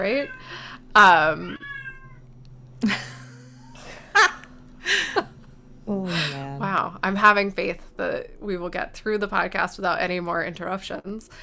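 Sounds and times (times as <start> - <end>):
speech: 0.0 - 1.7, 2.8 - 3.1, 5.9 - 11.4
male pet cat meowing: 0.0 - 2.2
low steady hum: 0.0 - 11.4.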